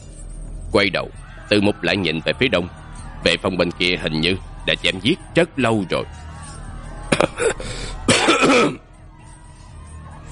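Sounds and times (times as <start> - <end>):
speech: 0.7 - 6.3, 8.5 - 8.8
laughter: 0.7 - 10.2
helmeted cavalry commander coughing after being thrown from his horse: 7.2 - 8.8.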